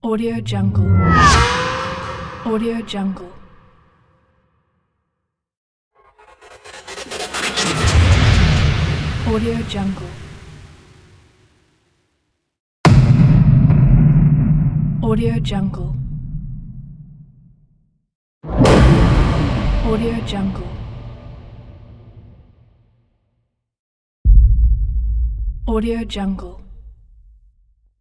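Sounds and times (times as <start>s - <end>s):
massive boom: 0.8s - 3.6s, 6.1s - 11.2s, 12.9s - 16.8s, 18.5s - 22.5s, 24.3s - 27.9s.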